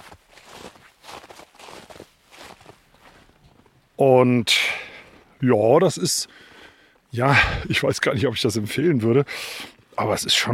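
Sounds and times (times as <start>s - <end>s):
footsteps crunching through snow in a forest at dusk: 0.0s - 3.7s
speech: 4.0s - 4.7s, 5.4s - 6.5s, 7.1s - 10.5s.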